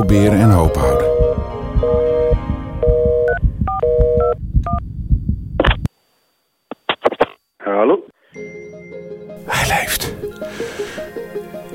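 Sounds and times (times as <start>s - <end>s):
speech: 0.0s - 1.1s
low rhythmic rumble: 0.0s - 5.9s
home landline telephone keypad tones: 0.4s - 4.8s
crackly telephone line noise: 5.6s - 7.7s.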